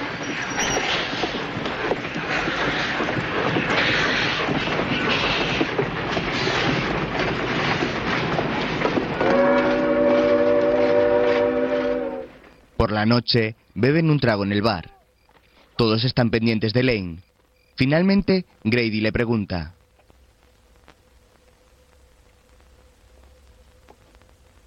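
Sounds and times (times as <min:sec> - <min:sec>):
train leaving a station rumbling and clattering: 0:00.0 - 0:12.9
multi-toned train horn blast: 0:09.2 - 0:12.4
speech: 0:13.0 - 0:14.9, 0:15.8 - 0:19.8.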